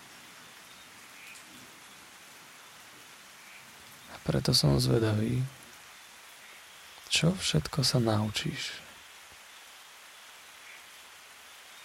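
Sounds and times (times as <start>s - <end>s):
steady rain patter: 0.0s - 11.8s
speech: 4.2s - 5.6s, 7.1s - 8.8s.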